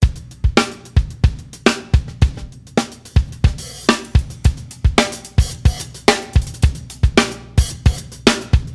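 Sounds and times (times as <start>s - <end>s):
drum loop: 0.0s - 8.7s.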